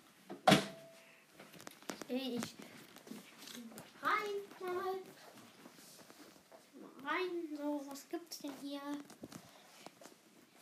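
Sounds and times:
door shutting with a firm thud and metallic ring: 0.4 - 0.9
faint shuffling: 0.9 - 10.6
speech: 2.1 - 2.7, 7.1 - 9.3.

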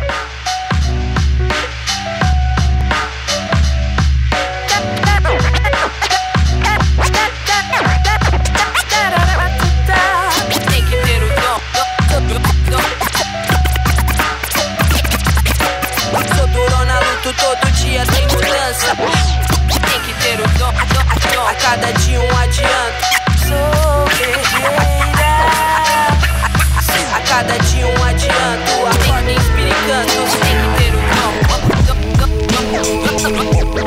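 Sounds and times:
heavy thumping hip-hop beat: 0.0 - 33.8
DJ turntable scratching: 4.3 - 33.8.

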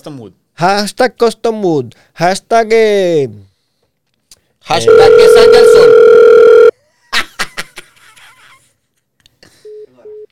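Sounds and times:
speech: 0.0 - 3.5, 4.6 - 6.1
loud steady electronic phone call tone: 4.7 - 6.7
short ringback beeps of an unanswered phone call: 4.8 - 6.7.

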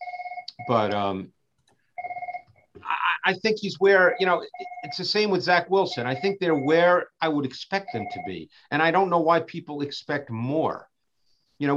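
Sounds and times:
phone ringing with a warbling electronic trill: 0.0 - 1.0, 2.0 - 2.6, 3.9 - 6.9, 7.8 - 8.4
speech: 0.6 - 1.4, 3.3 - 10.9, 11.6 - 11.7
short vocal exclamation: 2.8 - 3.4.

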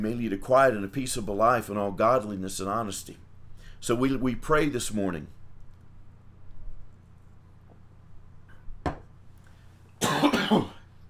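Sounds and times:
speech: 0.0 - 3.2, 3.8 - 5.4
quiet low room hum: 0.0 - 11.0
person coughing: 10.0 - 10.9.

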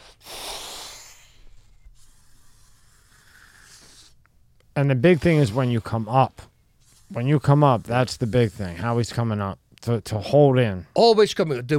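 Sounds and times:
breath passing through a breathing device held in the mouth: 0.0 - 4.2
speech: 4.8 - 6.5, 7.1 - 11.7.

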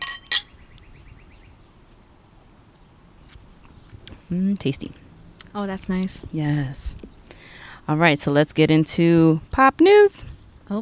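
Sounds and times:
wine glasses clinking in a toast: 0.0 - 0.5
speech: 4.3 - 5.0, 5.6 - 7.1, 7.9 - 10.8.

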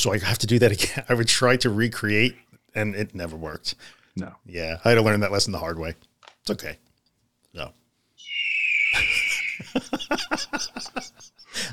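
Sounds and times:
speech: 0.0 - 6.8, 7.5 - 7.8, 8.9 - 11.7
high-pitched eagle screech sound effect: 8.2 - 10.7
rapid burst of laughter: 8.9 - 11.7.

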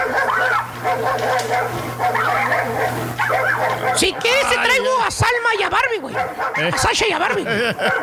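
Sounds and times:
low hum: 0.0 - 4.6
dogs yipping, whining and barking in a scuffle: 0.0 - 8.0
laughter: 3.6 - 8.0
speech: 4.0 - 8.0.

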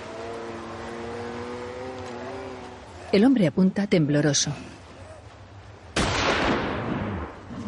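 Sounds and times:
speech: 3.1 - 4.8
rifle shot with long decay: 6.0 - 7.4.

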